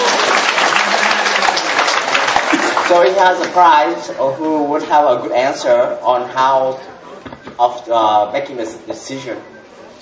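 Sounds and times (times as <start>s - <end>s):
many hands clapping together: 0.0s - 3.8s
speech: 2.9s - 7.0s, 7.6s - 10.0s.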